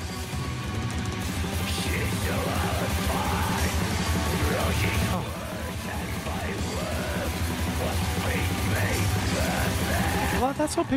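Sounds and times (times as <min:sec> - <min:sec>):
melodic extreme metal music with distorted guitars: 0:00.0 - 0:10.9
harsh screamed metal vocals: 0:02.1 - 0:03.8, 0:04.5 - 0:07.4, 0:08.2 - 0:10.5
person exclaiming: 0:02.1 - 0:03.8, 0:04.4 - 0:10.4
speech: 0:10.6 - 0:10.9.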